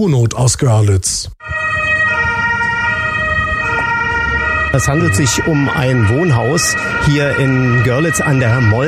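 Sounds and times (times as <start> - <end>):
speech: 0.0 - 1.4, 4.7 - 8.8
fire engine and ambulance sirens at collapsed residential building in Görlitz Germany: 1.4 - 8.8
fire engine and ambulance engines idling: 2.5 - 8.8.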